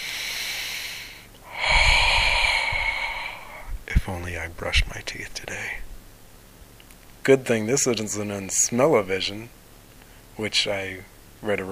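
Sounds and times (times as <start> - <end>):
breathing close to the microphone: 0.0 - 3.9
speech: 4.2 - 5.9, 7.2 - 9.6, 10.4 - 11.7.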